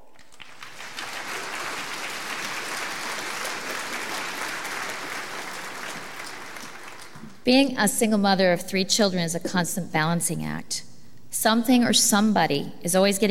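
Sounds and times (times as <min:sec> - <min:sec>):
sizable audience applauding a woman speaker: 0:00.0 - 0:07.4
speech: 0:07.4 - 0:13.2.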